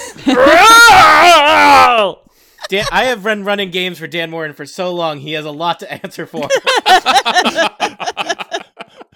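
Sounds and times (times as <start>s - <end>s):
speech: 0.2s - 0.6s, 2.0s - 8.4s
man imitating an orc battle scream: 0.2s - 2.2s
laughter: 6.3s - 9.1s.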